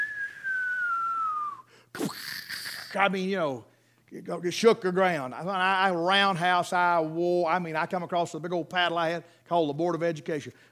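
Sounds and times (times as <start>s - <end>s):
person whistling a descending tone imitating a falling atomic bomb: 0.0s - 1.7s
speech: 2.9s - 10.6s.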